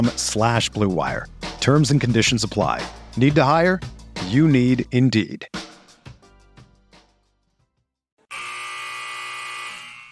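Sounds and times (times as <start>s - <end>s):
speech: 0.0s - 5.6s
basketball game final buzzer in an arena: 8.3s - 10.1s.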